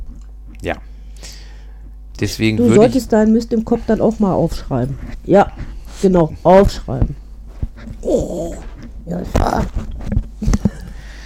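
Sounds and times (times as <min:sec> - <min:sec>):
speech: 0:00.6 - 0:01.4, 0:02.2 - 0:07.2, 0:07.8 - 0:10.6
dog wet sniffing: 0:03.9 - 0:06.7, 0:07.5 - 0:09.8
dog's nose bumping against a microphone: 0:07.0 - 0:10.7.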